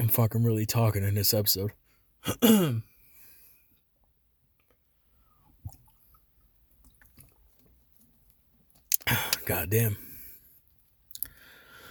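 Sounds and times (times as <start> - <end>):
speech: 0.1 - 2.9, 9.1 - 10.0
mouth clicks: 8.9 - 9.5, 11.1 - 11.4
breathy gasp: 11.3 - 11.8.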